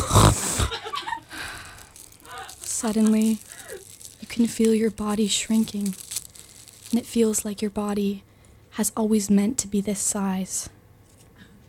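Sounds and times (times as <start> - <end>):
loud nasal snort: 0.0 - 0.7
speech: 2.8 - 3.5, 4.4 - 6.0, 6.9 - 10.8.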